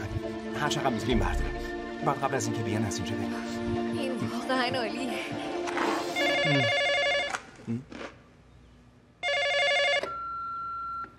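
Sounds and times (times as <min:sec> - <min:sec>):
speech: 0:00.6 - 0:05.5, 0:06.4 - 0:06.8, 0:07.7 - 0:08.2
telephone bell ringing in trilling bursts: 0:06.2 - 0:07.4, 0:09.2 - 0:11.0.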